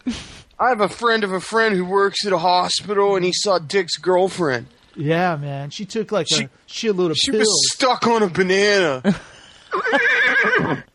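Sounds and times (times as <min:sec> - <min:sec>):
speech: 0:00.0 - 0:10.9
horse whinnying: 0:09.7 - 0:10.9.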